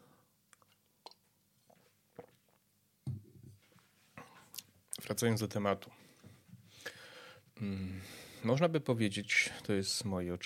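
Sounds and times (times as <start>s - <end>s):
person sipping coffee: 0.6s - 2.6s
speech: 5.1s - 6.1s, 7.6s - 10.4s.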